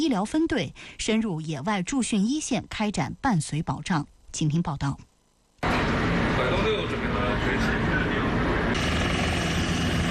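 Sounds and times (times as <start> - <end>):
speech: 0.0 - 5.1
several army helicopters lifting off from an airfield: 5.6 - 10.0.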